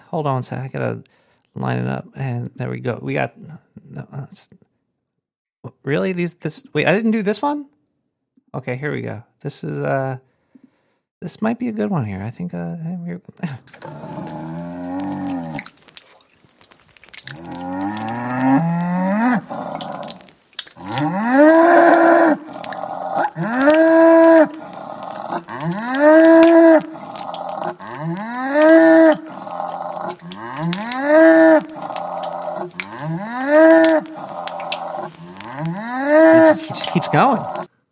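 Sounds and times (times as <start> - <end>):
speech: 0.1 - 4.7, 5.6 - 7.8, 8.5 - 10.3, 11.2 - 14.5, 37.1 - 37.6
cow mooing: 17.4 - 20.2, 20.8 - 37.7.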